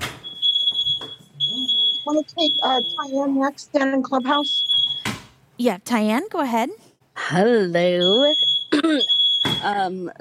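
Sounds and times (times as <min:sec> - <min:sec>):
household smoke alarm beeping: 0:00.1 - 0:05.2, 0:07.8 - 0:09.8
speech: 0:02.1 - 0:04.7, 0:05.6 - 0:10.1.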